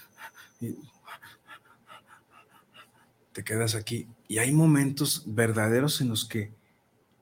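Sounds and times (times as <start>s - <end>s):
person breathing quickly and shallowly: 0.0s - 3.2s
speech: 0.6s - 1.0s, 3.4s - 6.6s.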